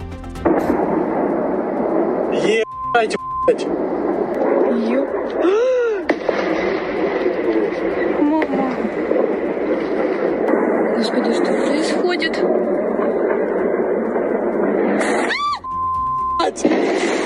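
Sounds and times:
continuous roar: 0.0 - 17.2
powerful explosions during missile attack: 0.2 - 17.2
speech: 2.4 - 4.1, 4.7 - 5.8, 11.0 - 12.8
people crying out in alarm: 5.4 - 6.2, 15.2 - 15.6.

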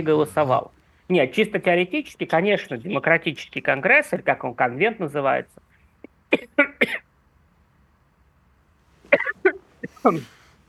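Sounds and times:
speech: 0.0 - 5.6, 6.3 - 7.0, 10.0 - 10.4
man coughing: 6.3 - 7.1, 9.1 - 10.6.

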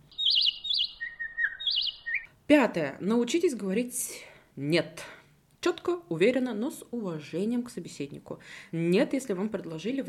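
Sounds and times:
small bird singing warbling chirps: 0.0 - 2.3
speech: 2.5 - 10.0.

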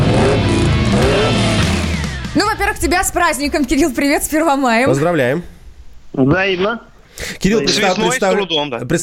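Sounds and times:
car engine revving: 0.0 - 2.4
speech: 2.6 - 5.5, 6.1 - 9.0.

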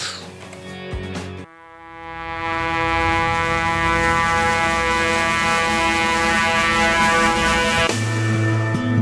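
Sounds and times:
sustained rich wind instrument drone: 1.5 - 8.2.

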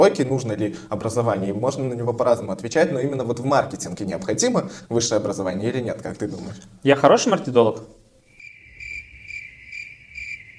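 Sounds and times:
speech: 0.0 - 8.0
crickets chirping in a high-pitched trill: 8.1 - 10.5.

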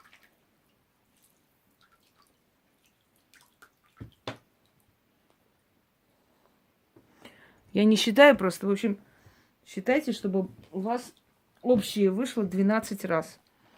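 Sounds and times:
squeezed lemon juice dripping into water: 0.0 - 5.4
speech: 7.8 - 9.1, 9.7 - 13.4.

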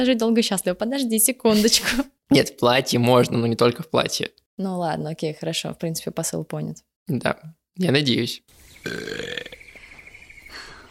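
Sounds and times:
speech: 0.0 - 9.6
loud drawn-out burp with a tonal rasp: 8.8 - 9.7.

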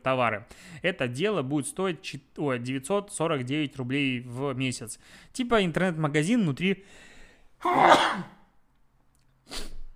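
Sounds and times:
speech: 0.0 - 8.4
loud sneeze: 7.6 - 8.5, 9.4 - 9.9
short sharp sniff: 9.4 - 9.9.

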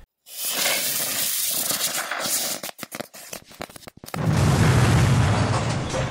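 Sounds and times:
loud firework-like hiss of potted money trees launching: 0.2 - 2.8
rapid run of sharp crackles and pops: 0.3 - 6.0.

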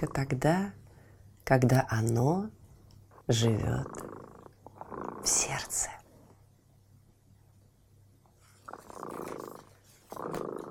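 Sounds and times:
speech: 0.0 - 0.8, 1.5 - 2.6, 3.3 - 4.1, 5.2 - 6.0
cat purring: 3.3 - 6.0, 8.4 - 10.6.

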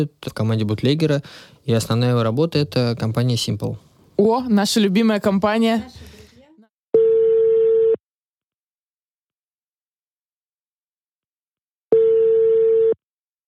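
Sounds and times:
speech: 0.0 - 6.2
telephone ringback tone on an outgoing call: 7.0 - 8.0, 11.9 - 13.0.

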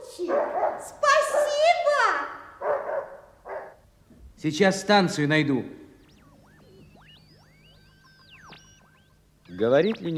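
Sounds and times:
small dog barking: 0.2 - 2.0, 2.6 - 3.8
speech: 4.4 - 5.8, 9.6 - 10.1.

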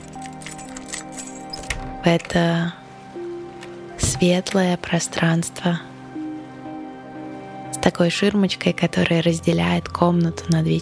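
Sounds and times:
door of a room in a seaside house being unlocked with a key: 0.0 - 2.4
keys jingling and clinking: 0.0 - 2.4
speech: 2.0 - 2.8, 4.2 - 5.9, 7.9 - 10.8.

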